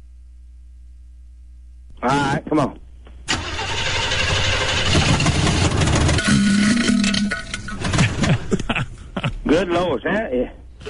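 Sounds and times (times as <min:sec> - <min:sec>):
speech: 0:02.0 - 0:02.8, 0:09.5 - 0:10.8
car engine cranking and firing up: 0:03.3 - 0:08.2
laughter: 0:07.7 - 0:10.0.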